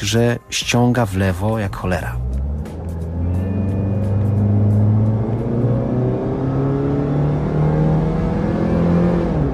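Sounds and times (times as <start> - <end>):
speech: 0.0 - 2.4
car engine revving hard as driver floors the gas pedal pulling away from traffic lights: 2.4 - 9.5.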